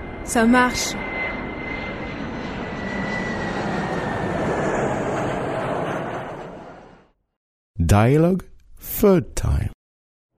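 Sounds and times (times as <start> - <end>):
airplane passing overhead with engine roar: 0.0 - 7.2
speech: 0.2 - 1.1, 7.9 - 9.7
thin airplane engine whine: 1.0 - 7.0.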